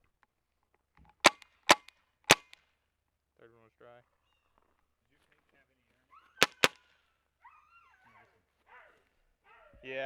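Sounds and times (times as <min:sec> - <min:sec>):
gunshots: 0:01.3 - 0:02.6, 0:06.4 - 0:06.8.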